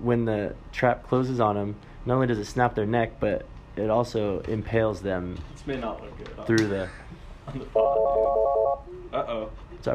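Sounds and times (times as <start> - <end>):
speech: 0.0 - 9.9
telephone ringing with a loud electronic warble: 7.8 - 8.8.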